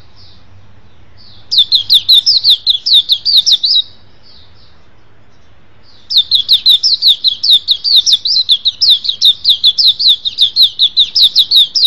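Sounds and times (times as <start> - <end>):
Oriental magpie-robin singing: 1.2 - 4.7, 5.8 - 11.8.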